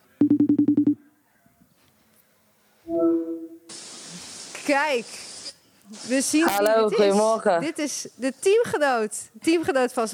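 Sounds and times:
phone ringing tone while placing a call: 0:00.2 - 0:01.0
brief steady phone tone: 0:02.9 - 0:03.7
hiss of telephone line noise: 0:03.7 - 0:06.7
speech: 0:04.7 - 0:05.3, 0:05.9 - 0:10.1.

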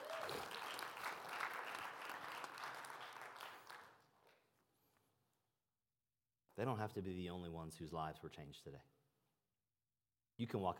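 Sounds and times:
church audience cheering after a baptism: 0:00.0 - 0:00.8
large church audience applauding after a baptism: 0:00.0 - 0:04.4
speech: 0:06.6 - 0:09.0, 0:10.4 - 0:10.7.

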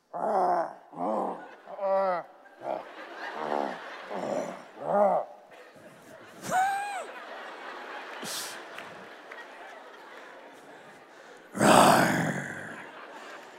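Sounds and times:
group of people imitating lion roars: 0:00.0 - 0:05.4, 0:11.5 - 0:13.0
laughter: 0:00.7 - 0:13.5.

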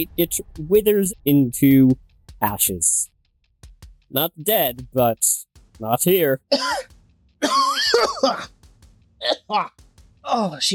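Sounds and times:
speech: 0:00.0 - 0:03.1, 0:04.1 - 0:08.6, 0:09.2 - 0:10.7
person coughing with strained gurgling cough: 0:06.5 - 0:08.5, 0:09.2 - 0:09.7.

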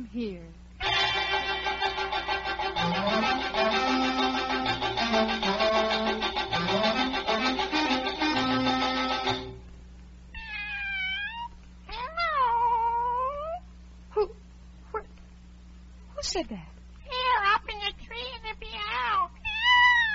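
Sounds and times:
steady low hum: 0:00.0 - 0:10.4
cat meowing: 0:10.3 - 0:13.6, 0:17.1 - 0:20.1.

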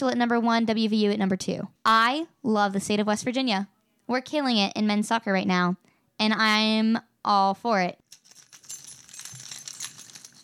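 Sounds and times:
speech: 0:00.0 - 0:08.0
metal climbing gear jingling and clinking: 0:08.1 - 0:10.4.

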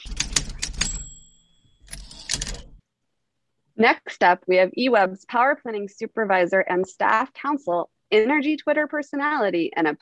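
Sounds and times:
typewriter keys clacking: 0:00.0 - 0:02.8
speech: 0:03.8 - 0:09.9.

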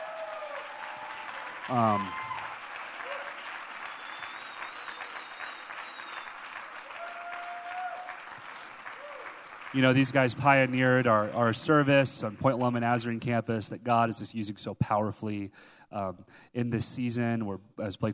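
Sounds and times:
audience applauding: 0:00.0 - 0:12.5
speech: 0:01.7 - 0:02.2, 0:09.7 - 0:18.1
person whooping: 0:01.7 - 0:03.4, 0:06.9 - 0:08.2, 0:09.0 - 0:09.3.

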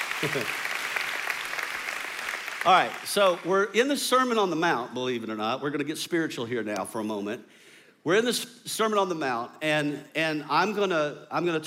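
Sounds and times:
audience applause: 0:00.0 - 0:03.5
speech: 0:00.2 - 0:00.6, 0:02.6 - 0:11.6.

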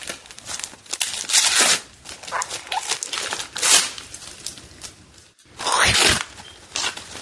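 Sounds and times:
old-style gift wrapping paper torn open on a present: 0:00.0 - 0:07.2.

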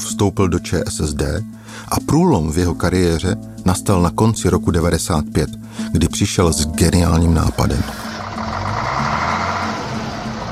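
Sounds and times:
speech: 0:00.1 - 0:08.1
Karosa camper bus engine idling: 0:06.9 - 0:10.5.

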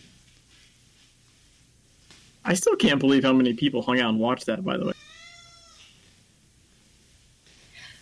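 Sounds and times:
low hum: 0:00.0 - 0:08.0
speech: 0:02.4 - 0:05.0
faint cat meow: 0:04.9 - 0:06.0.

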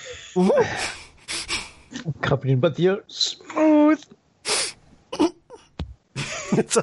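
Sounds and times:
speech: 0:00.1 - 0:01.0, 0:02.0 - 0:04.1, 0:06.5 - 0:06.8
voice imitating a harsh wheezy cough after whiskey: 0:05.2 - 0:05.5
laughter: 0:06.2 - 0:06.8.

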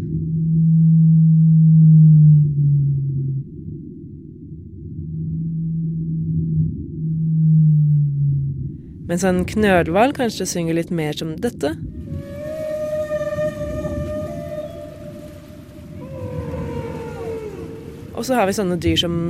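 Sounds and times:
constant low rumble of ocean noise: 0:00.0 - 0:19.2
speech: 0:09.1 - 0:11.9, 0:18.2 - 0:19.2
deep sustained blue whale moans: 0:12.0 - 0:19.0.

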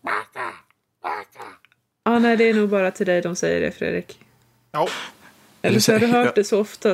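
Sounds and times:
person imitating a crow's cawing as in comedic anime scenes: 0:00.0 - 0:01.7
speech: 0:02.2 - 0:06.9.

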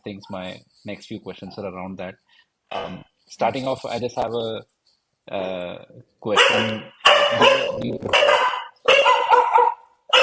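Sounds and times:
speech: 0:00.0 - 0:04.7, 0:05.3 - 0:08.4
dog barking: 0:06.3 - 0:10.2.

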